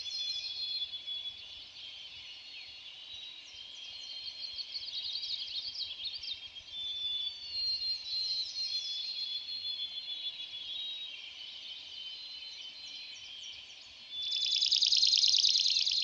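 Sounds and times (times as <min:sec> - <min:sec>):
chorus of other birdsong: 0:00.0 - 0:16.0
swamp sparrow singing a rattling trill: 0:14.2 - 0:16.0.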